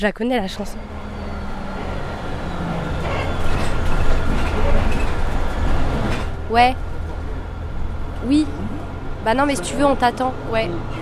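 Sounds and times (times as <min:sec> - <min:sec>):
speech: 0:00.0 - 0:01.0, 0:06.5 - 0:06.9, 0:08.2 - 0:11.0
city bus engine and road noise rumble: 0:00.0 - 0:11.0.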